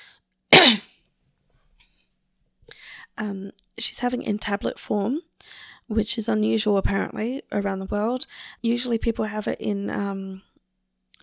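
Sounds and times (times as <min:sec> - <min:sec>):
person coughing: 0:00.5 - 0:01.0
speech: 0:03.2 - 0:10.5.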